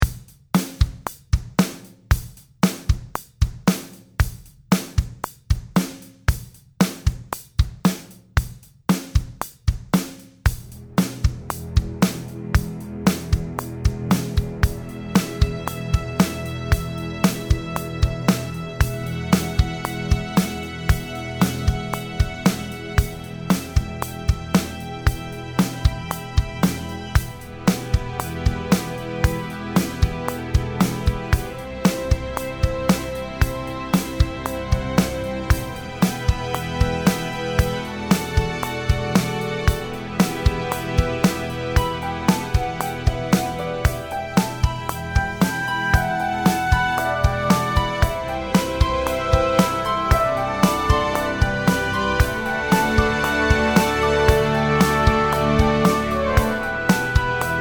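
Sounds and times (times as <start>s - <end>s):
drum: 0.0s - 57.5s
metronome: 15.1s - 57.5s.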